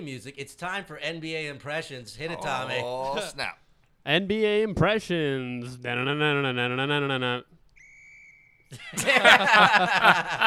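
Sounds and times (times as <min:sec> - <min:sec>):
speech: 0:00.0 - 0:07.5, 0:08.7 - 0:10.4
loud excited voices: 0:02.2 - 0:03.5
whistle made with the mouth: 0:07.8 - 0:08.7
laughter: 0:08.7 - 0:10.4.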